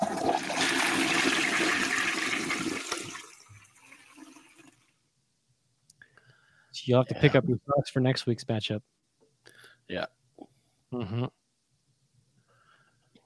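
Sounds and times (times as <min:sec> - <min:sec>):
toilet flushing with rushing gurgling water: 0:00.0 - 0:04.8
speech: 0:06.8 - 0:09.0, 0:09.9 - 0:11.4.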